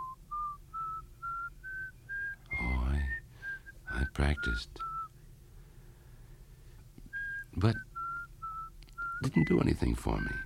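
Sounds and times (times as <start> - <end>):
person whistling a short tune: 0.0 - 5.1, 7.1 - 9.6, 10.2 - 10.4
speech: 4.2 - 4.9, 7.6 - 7.9, 9.2 - 10.4.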